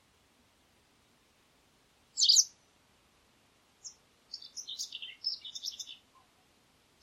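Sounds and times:
bird chirping and twittering: 0:02.2 - 0:02.5, 0:03.8 - 0:06.0.

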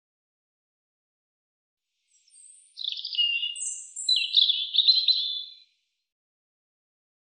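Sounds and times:
European robin singing thin high warbled phrases: 0:02.1 - 0:05.7.

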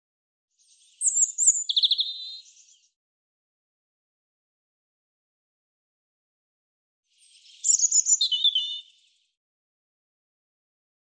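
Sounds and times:
European robin singing: 0:00.6 - 0:02.9, 0:07.1 - 0:09.2.

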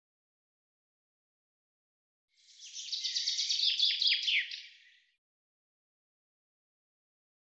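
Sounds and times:
common chaffinch singing a phrase of downward-sliding notes: 0:02.5 - 0:05.0.

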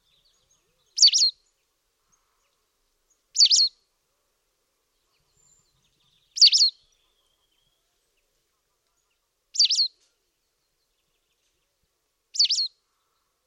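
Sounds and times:
white wagtail chirping calls: 0:00.9 - 0:01.4, 0:03.4 - 0:03.7, 0:06.3 - 0:06.8, 0:09.6 - 0:09.9, 0:12.4 - 0:12.7.

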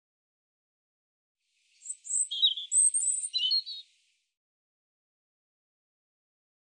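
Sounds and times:
European robin singing: 0:01.7 - 0:04.0.

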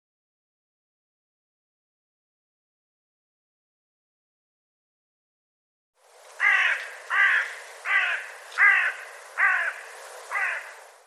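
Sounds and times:
bird cawing: 0:06.3 - 0:11.0.

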